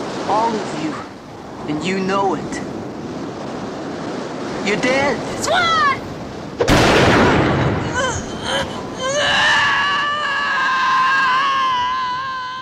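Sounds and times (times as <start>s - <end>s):
speech: 0.3s - 2.8s, 4.7s - 6.0s
pistol gunshot: 6.6s - 7.8s
wavering cry of pain: 7.8s - 12.6s.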